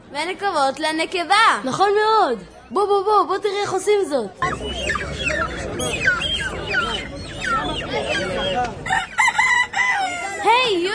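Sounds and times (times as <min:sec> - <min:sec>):
speech: 0:00.1 - 0:06.5, 0:10.4 - 0:10.9
dense barnyard murmur: 0:03.4 - 0:10.5
hens clucking: 0:03.5 - 0:10.9
roosters crowing: 0:04.4 - 0:10.6.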